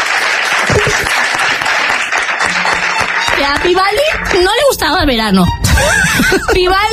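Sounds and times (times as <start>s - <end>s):
audience applause: 0.0s - 4.4s
speech: 3.4s - 6.9s
laughter: 5.7s - 6.9s.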